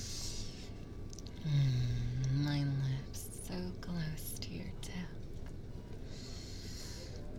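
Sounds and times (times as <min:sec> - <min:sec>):
heavy breathing through the nose: 0:00.0 - 0:00.8, 0:06.1 - 0:07.3
steady low hiss: 0:00.0 - 0:07.3
speech: 0:01.4 - 0:01.9.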